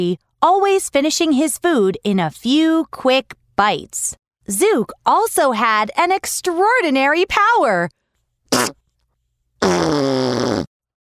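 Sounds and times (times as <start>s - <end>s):
speech: 0.0s - 8.0s, 8.6s - 8.8s, 9.6s - 10.4s
hippo farts: 8.5s - 8.8s, 9.6s - 10.7s.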